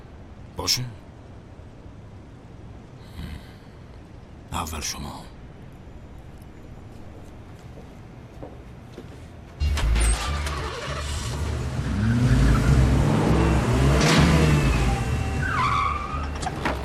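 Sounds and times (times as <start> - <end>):
speech: 0.6 - 1.0, 4.6 - 5.4
car engine revving: 9.6 - 16.1
brief squeal: 14.4 - 16.6.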